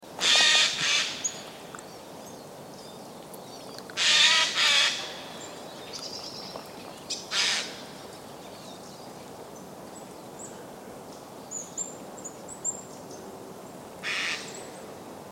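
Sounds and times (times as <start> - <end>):
jay calling: 0.2 - 1.5, 4.0 - 5.3, 7.3 - 7.8, 14.0 - 14.6.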